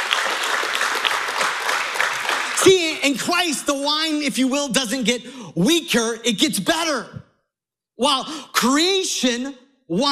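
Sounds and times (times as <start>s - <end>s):
audience applause at a church service: 0.0s - 3.2s
speech: 2.7s - 7.2s, 8.0s - 10.1s.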